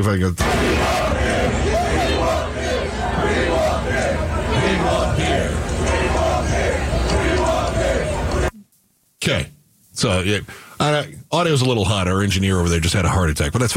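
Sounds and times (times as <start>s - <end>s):
speech: 0.0s - 1.0s, 9.3s - 13.7s
large rowdy crowd chanting in unison: 0.4s - 8.5s.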